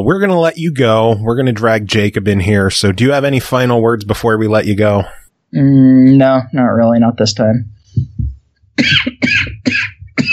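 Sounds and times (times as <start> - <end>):
low short throaty sound: 0.0 - 5.8
speech: 0.0 - 7.8
person coughing: 8.8 - 10.3.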